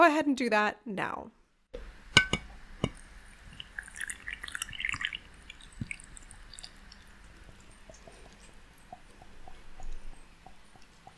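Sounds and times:
speech: 0.0 - 1.4
quiet fizzing as bubbles form in water: 2.9 - 11.1
water poured onto tereré leaves in a cup: 2.9 - 11.1.

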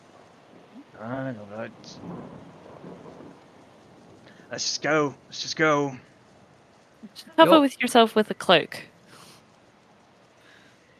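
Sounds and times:
low rolling thunder: 0.0 - 6.1
steady hiss of rain: 0.0 - 8.2, 9.0 - 10.9
brief rising voice-like tone: 1.0 - 2.0, 4.5 - 6.0, 7.0 - 8.8
speech: 1.0 - 3.4, 4.5 - 6.1, 7.0 - 8.9.

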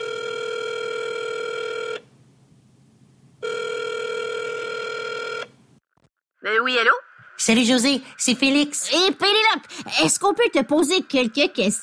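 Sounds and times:
telephone ringing tone while placing a call: 0.0 - 2.0, 3.4 - 5.5
speech: 6.4 - 11.8.

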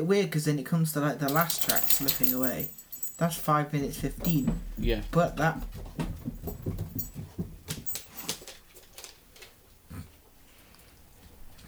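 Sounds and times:
speech: 0.0 - 6.0
dog running down a flight of stairs: 1.3 - 9.8.

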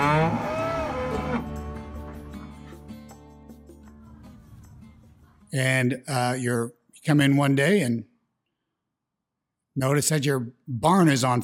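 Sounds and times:
dairy cow mooing: 0.0 - 1.6
speech: 5.5 - 8.1, 9.8 - 11.4.

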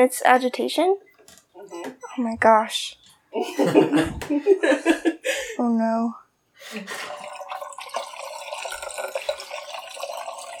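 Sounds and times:
speech: 0.0 - 7.2
laughter: 3.3 - 5.6
blix chemical poured into a film developing tank: 7.0 - 10.5.

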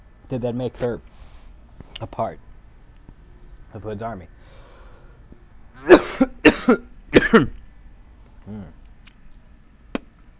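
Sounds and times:
speech: 0.3 - 1.1, 2.0 - 2.5, 3.7 - 4.4, 5.8 - 7.6
person coughing after choking on their own spit: 5.8 - 7.6.

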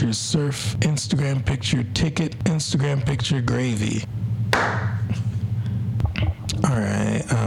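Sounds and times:
steady low hum: 0.0 - 7.4
speech: 0.1 - 4.8
single sharp hand clap: 4.5 - 5.0.

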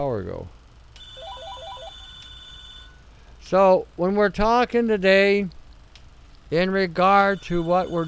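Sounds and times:
speech: 0.0 - 0.6, 3.5 - 5.6, 6.5 - 8.0
low hum: 0.0 - 8.0
phone electronic ringtone trill: 1.0 - 3.0, 7.3 - 8.0.

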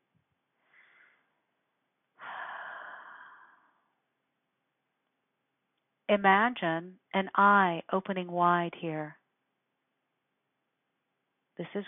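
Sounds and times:
deep breath during a guided meditation exercise: 0.6 - 1.4, 2.2 - 4.0
speech: 6.1 - 9.2, 11.6 - 11.8.

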